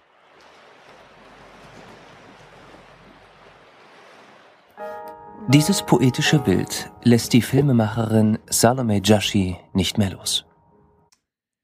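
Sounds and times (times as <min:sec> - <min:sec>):
sea and waves rushing around a vessel: 0:00.0 - 0:04.8
brief burst of bright tonal sounds: 0:04.8 - 0:10.1
speech: 0:04.8 - 0:10.5.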